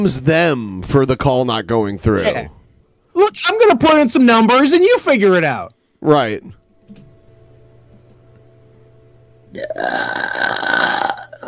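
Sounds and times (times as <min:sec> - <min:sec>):
speech: 0:00.0 - 0:02.6, 0:03.2 - 0:06.6, 0:09.5 - 0:11.0
high-pitched burp: 0:09.5 - 0:11.4.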